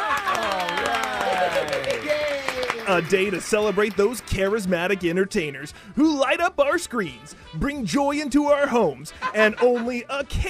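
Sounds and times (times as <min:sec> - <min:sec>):
small TV talk show audience cheering and whooping: 0:00.0 - 0:04.8
scattered clapping: 0:00.0 - 0:05.0
speech: 0:02.9 - 0:10.4.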